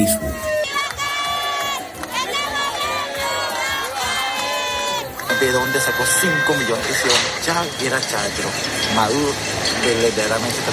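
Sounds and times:
speech: 0:00.0 - 0:00.4, 0:05.5 - 0:10.7
large crowd of street protesters shouting slogans at night: 0:00.0 - 0:07.4
shrill cries: 0:00.0 - 0:07.4.

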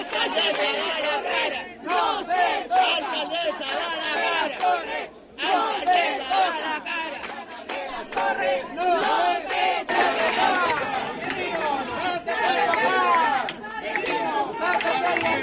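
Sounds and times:
agitated residents shouting over one another at a city council meeting in Las Palmas de Gran Canaria: 0:00.0 - 0:15.4.

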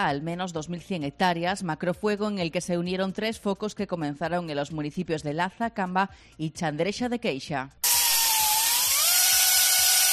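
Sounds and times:
speech: 0:00.0 - 0:07.9
chainsaw cutting firebreak lines: 0:07.8 - 0:10.1.

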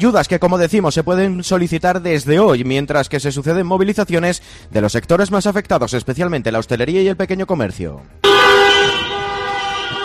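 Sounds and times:
speech: 0:00.0 - 0:09.1
car horn blaring at a protest of hospitality workers and shopkeepers in cars: 0:08.2 - 0:10.0.

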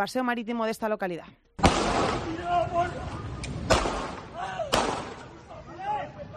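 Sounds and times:
speech: 0:00.0 - 0:03.8
police gunshots at night on a seafront promenade: 0:01.6 - 0:02.8, 0:03.5 - 0:05.4
people shouting: 0:02.2 - 0:06.3.

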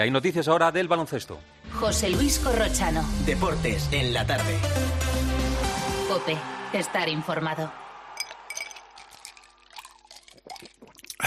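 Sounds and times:
speech: 0:00.0 - 0:05.5, 0:06.1 - 0:07.8
cold drink poured over ice: 0:08.2 - 0:11.2.

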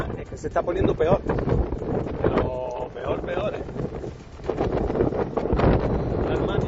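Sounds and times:
strong wind blowing on the coast at El Médano in Tenerife: 0:00.0 - 0:06.6
speech: 0:00.2 - 0:04.2.

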